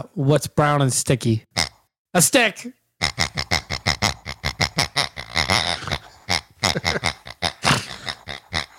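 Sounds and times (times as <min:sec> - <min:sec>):
speech: 0:00.0 - 0:01.5, 0:02.1 - 0:02.8
small blue pig toy making laughing oinks: 0:01.6 - 0:01.8, 0:03.0 - 0:08.7.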